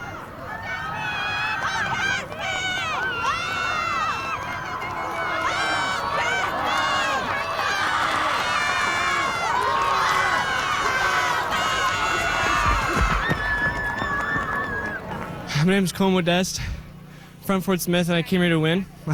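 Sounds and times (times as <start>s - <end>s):
large crowd at a race cheering on racers and shouting: 0.0s - 15.4s
speech: 15.7s - 16.8s, 17.5s - 19.1s.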